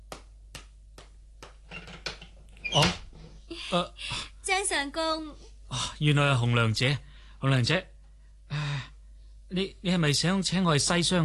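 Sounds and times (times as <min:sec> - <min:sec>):
door creaking open: 0:01.7 - 0:03.3
speech: 0:03.7 - 0:07.9, 0:09.5 - 0:11.2.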